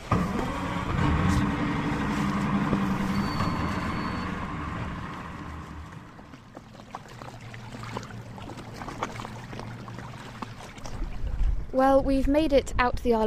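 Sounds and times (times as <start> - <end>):
sharp splashes: 0.0 - 11.6
rushing water: 0.0 - 11.7
boat engine rumbling on a ride out to a rocky island: 0.0 - 13.2
speech: 11.8 - 13.2.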